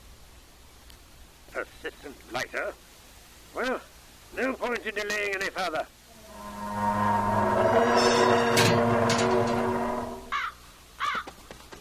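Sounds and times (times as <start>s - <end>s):
speech: 1.8s - 2.9s, 3.6s - 6.0s
long steady tonal drone: 6.1s - 10.4s
crow cawing: 10.3s - 11.3s.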